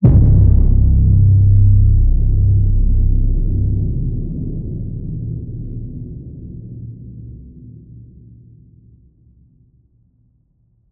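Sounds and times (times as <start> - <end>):
low sci-fi cinematic designed hit: 0.0 - 7.7.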